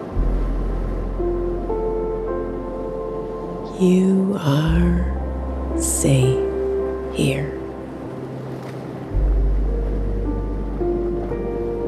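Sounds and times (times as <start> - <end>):
calm ocean waves washing in: 0.0 - 11.8
speech: 3.8 - 5.1, 5.8 - 6.5, 7.2 - 7.6.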